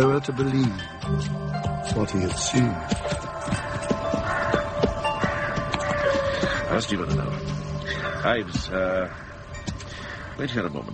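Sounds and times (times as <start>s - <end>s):
speech: 0.0s - 3.6s, 6.8s - 7.4s, 8.2s - 9.2s, 10.4s - 10.9s
constant low droning background: 0.0s - 10.9s
horse hooves clip-clopping at a walking pace: 0.6s - 8.8s.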